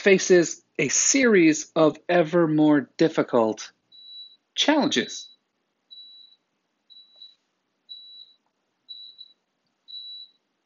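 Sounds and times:
speech: 0.0 - 3.8, 4.6 - 5.3
high-pitched electronic beeps: 3.9 - 10.4.

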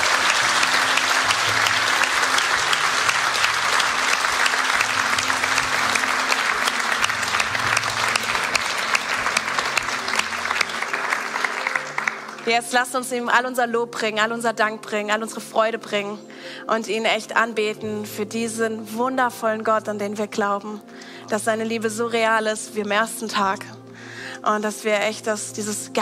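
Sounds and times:
large crowd applauding loudly: 0.0 - 12.9
speech: 12.5 - 23.8, 24.4 - 26.0.

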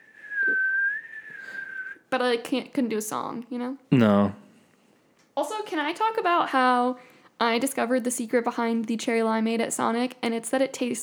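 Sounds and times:
person whistling one long steady note: 0.0 - 2.0
speech: 2.1 - 4.4, 5.4 - 11.0.

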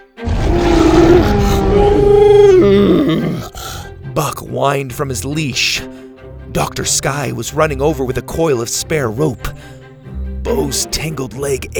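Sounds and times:
dinosaurs roaring: 0.2 - 3.9
speech: 4.2 - 5.9, 6.6 - 9.8, 10.5 - 11.7.

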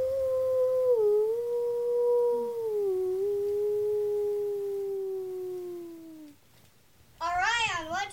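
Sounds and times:
person imitating a wolf howl in celebration: 0.0 - 6.4.

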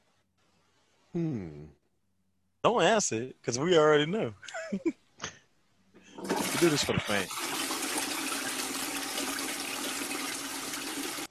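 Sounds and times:
speech: 1.2 - 1.8, 2.6 - 5.4, 6.5 - 7.6
toilet flushing: 6.1 - 11.2.

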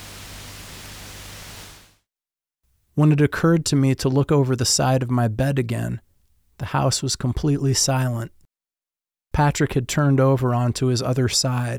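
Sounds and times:
broadcast static: 0.0 - 1.9
faint low hum: 0.0 - 1.9
speech: 3.0 - 8.4, 9.3 - 11.7.

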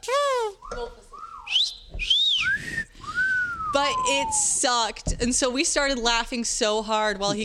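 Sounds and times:
person whistling a catcall: 0.6 - 4.6
speech: 3.8 - 7.4.

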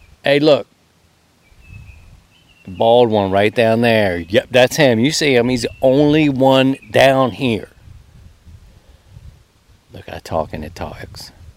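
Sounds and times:
speech: 0.2 - 0.7, 2.7 - 7.7, 9.9 - 11.4
faint high-pitched bird calls: 1.4 - 2.8
low outdoor rumble of wind: 1.5 - 2.3, 4.2 - 11.5.

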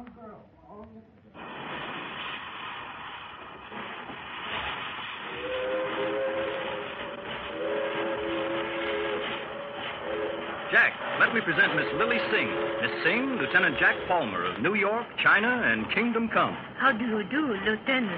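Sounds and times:
train rumbling at a railroad station: 1.4 - 18.1
train horn or whistle: 5.2 - 14.6
speech: 10.7 - 18.1.

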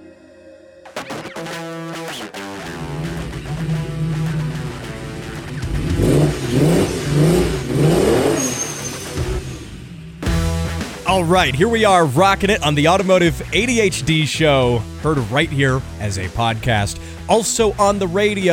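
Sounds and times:
car engine revving: 2.4 - 11.8
speech: 11.2 - 18.5.

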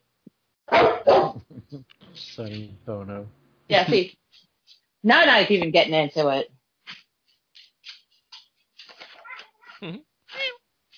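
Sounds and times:
speech: 1.7 - 6.6, 9.8 - 10.1
cat meowing: 9.2 - 10.6.

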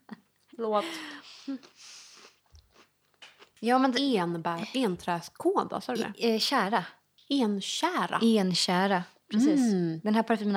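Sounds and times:
speech: 0.6 - 2.0, 3.6 - 10.5
chewing and crunching of cake: 1.6 - 3.6.

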